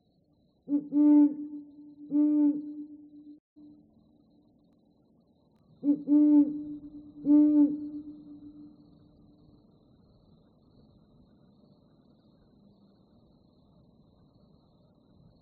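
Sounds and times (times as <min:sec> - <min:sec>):
speech: 0:00.7 - 0:01.5
bird hooting: 0:00.7 - 0:03.0, 0:05.8 - 0:08.7.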